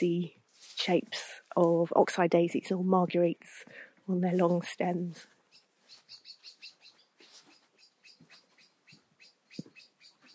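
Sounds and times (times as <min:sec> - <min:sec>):
speech: 0:00.0 - 0:05.4
small birds giving alarm calls in a hedgerow: 0:05.2 - 0:10.3.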